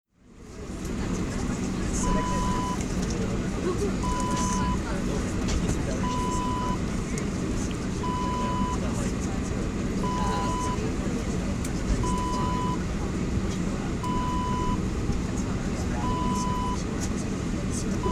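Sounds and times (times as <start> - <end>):
aircraft interior ambience: 0.2 - 18.1.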